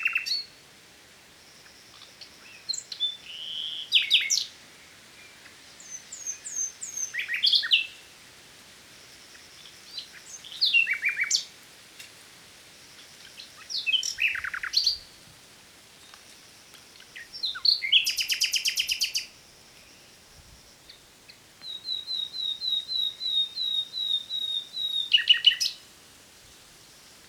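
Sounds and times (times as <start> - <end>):
common nightingale singing: 0.0 - 0.6, 1.6 - 4.6, 5.2 - 8.1, 9.3 - 11.5, 13.2 - 15.2, 16.9 - 25.9.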